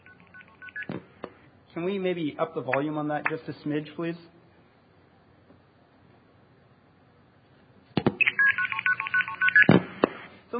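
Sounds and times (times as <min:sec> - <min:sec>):
long-distance telephone call dialing tones: 0:00.0 - 0:00.9, 0:08.2 - 0:09.8
speech: 0:01.8 - 0:04.4.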